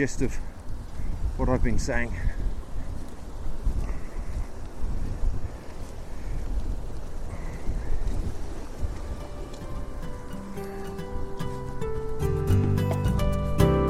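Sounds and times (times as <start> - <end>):
speech: 0.0 - 0.5, 1.4 - 2.4
heavy wind buffeting a recorder wrapped in protection against wind and rain: 0.0 - 13.8.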